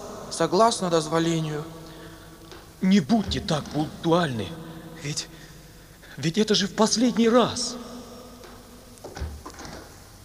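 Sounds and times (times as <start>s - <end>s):
faint hum: 0.0s - 10.2s
speech: 0.4s - 1.8s, 2.8s - 5.5s, 6.2s - 7.9s
door swinging shut with a soft low thud: 3.1s - 4.5s, 8.4s - 10.0s.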